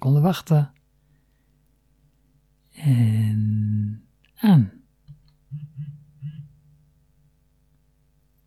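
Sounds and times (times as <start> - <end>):
speech: 0.1 - 0.8, 2.8 - 3.6, 4.4 - 4.8
braille keyboard buzzing vibration pulses on switching on and connecting to a phone: 5.1 - 7.6.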